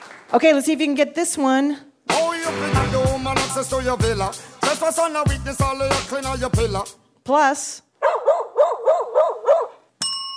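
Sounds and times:
speech: 0:00.3 - 0:03.0, 0:03.6 - 0:08.2
dog barking: 0:08.0 - 0:09.8.

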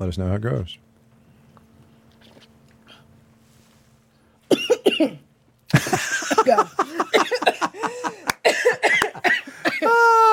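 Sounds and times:
speech: 0:00.0 - 0:00.9, 0:05.0 - 0:05.2
person sputtering coughs after swallowing a vermouth cocktail the wrong way: 0:04.5 - 0:05.2, 0:05.9 - 0:10.1
laughter: 0:05.7 - 0:08.4.

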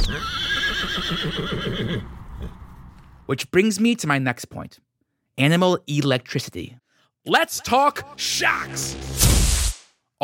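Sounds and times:
horse neighing: 0:00.0 - 0:02.7
speech: 0:00.1 - 0:02.6, 0:03.3 - 0:09.6.

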